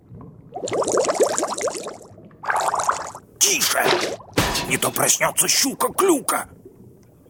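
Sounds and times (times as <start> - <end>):
bubbles blown underwater: 0.5 - 3.2
speech: 3.5 - 6.6.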